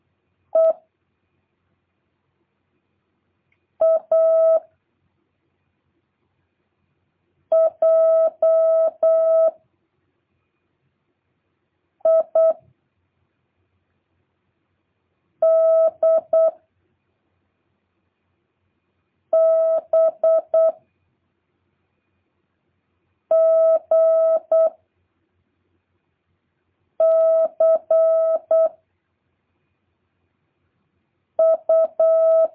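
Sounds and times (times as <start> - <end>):
Morse code tone keyed quickly in dot-and-dash bursts: 3.8 - 4.6, 7.5 - 9.6, 12.0 - 12.6, 15.4 - 16.6, 19.4 - 20.8, 23.3 - 24.7, 27.0 - 28.7, 31.4 - 32.5.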